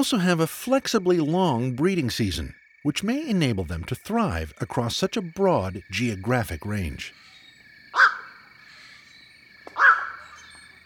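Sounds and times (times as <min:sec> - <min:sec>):
speech: 0:00.0 - 0:07.3
Black-crowned Night-Heron hoarse barking squawks: 0:07.1 - 0:09.1, 0:09.7 - 0:10.7.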